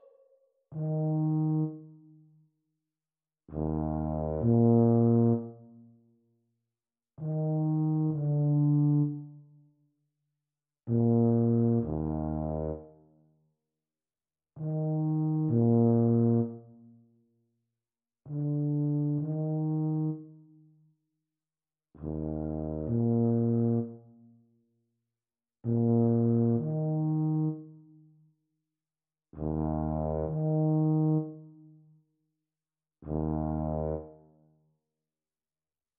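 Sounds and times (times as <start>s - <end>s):
Eb tuba duet practice: 0.7s - 2.0s, 3.5s - 6.0s, 7.2s - 9.5s, 10.9s - 13.1s, 14.6s - 17.0s, 18.3s - 20.5s, 22.0s - 24.3s, 25.7s - 27.9s, 29.3s - 31.7s, 33.0s - 34.5s.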